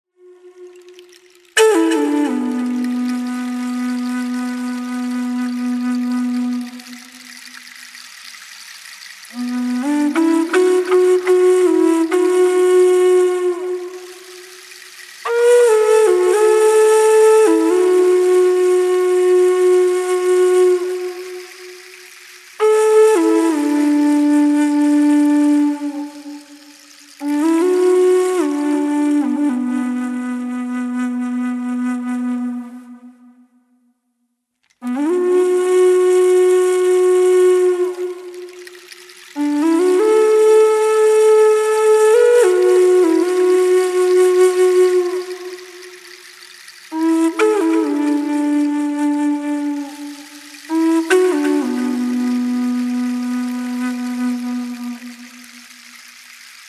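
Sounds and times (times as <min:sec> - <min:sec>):
solo flute: 0:00.1 - 0:34.0, 0:34.7 - 0:56.6.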